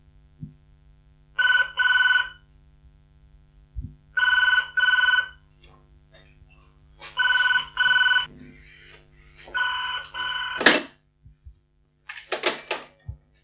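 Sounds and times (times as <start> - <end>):
phone ringing indoors: 1.4 - 2.4, 4.2 - 5.4, 7.0 - 8.3, 9.4 - 10.9, 12.1 - 12.9
phone handset picked up and put down indoors: 10.1 - 10.9, 12.1 - 12.9.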